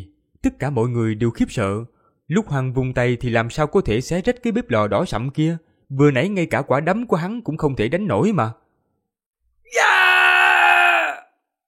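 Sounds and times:
speech: 0.4 - 8.6
badly wounded man screaming in pain: 9.7 - 11.4.

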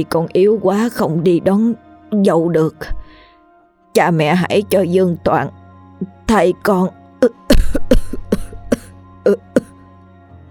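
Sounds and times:
speech: 0.0 - 3.2, 4.0 - 7.9, 9.2 - 9.6
weak sick young man coughing: 7.2 - 9.7.

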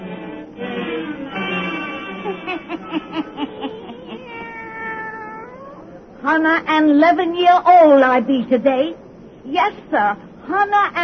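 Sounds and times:
laughter: 1.3 - 4.4
black cat meowing: 3.8 - 5.9
speech: 6.3 - 11.0.

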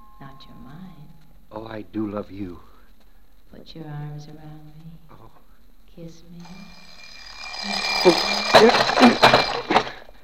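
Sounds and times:
speech: 1.5 - 2.7, 3.5 - 5.4, 6.0 - 7.0, 7.6 - 9.9
alarm clock ringing: 6.4 - 10.0.

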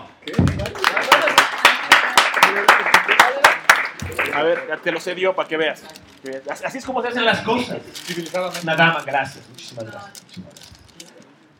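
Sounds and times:
audience clapping at a live fan talk: 0.2 - 4.9
speech: 4.4 - 10.6.

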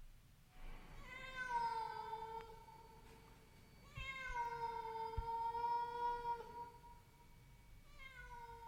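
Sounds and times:
cat meowing mournfully from the roof space: 1.0 - 2.6, 3.8 - 6.8, 7.9 - 8.6.

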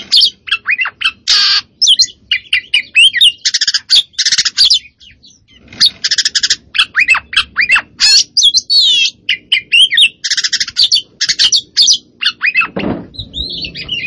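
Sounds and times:
Oriental magpie-robin singing, Kacer poci variety: 0.0 - 14.0.

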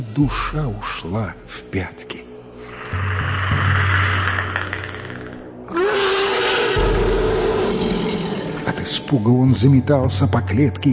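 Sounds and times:
speech: 0.0 - 2.2, 8.8 - 10.9
deafening leopard roar in a dawn forest: 2.6 - 8.7.

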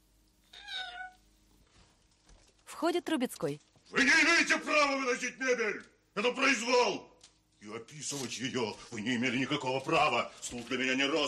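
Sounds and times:
small kitten meowing: 0.5 - 1.2
speech: 2.8 - 11.2.

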